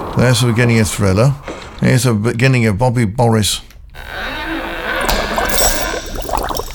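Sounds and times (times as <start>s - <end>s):
speech: 0.2s - 3.7s
liquid bubbling and gurgling: 4.9s - 6.7s
bright splashes: 5.0s - 6.7s
glassy clinks: 5.0s - 6.7s.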